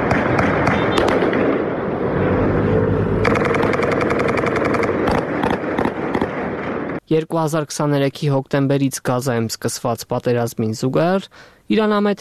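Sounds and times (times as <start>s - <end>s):
gunshots fired into the sky as a ceasefire sign: 0.0s - 1.8s, 3.2s - 7.0s
engine hum: 0.0s - 6.3s
speech: 7.1s - 12.2s.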